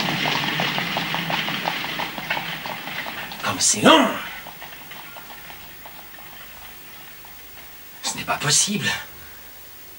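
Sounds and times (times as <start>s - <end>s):
hooves of a horse drawing a carriage clip-clopping: 0.0s - 3.4s, 4.3s - 7.8s
hiss: 0.0s - 9.9s
speech: 3.5s - 4.2s, 8.4s - 9.1s.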